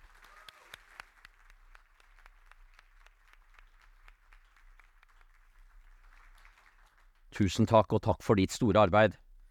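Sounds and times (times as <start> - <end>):
audience applause: 0.0 - 7.4
speech: 7.4 - 9.2.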